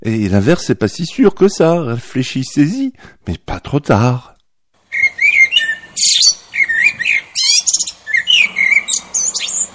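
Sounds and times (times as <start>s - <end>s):
speech: 0.0s - 4.3s
blackbird singing: 4.9s - 9.7s.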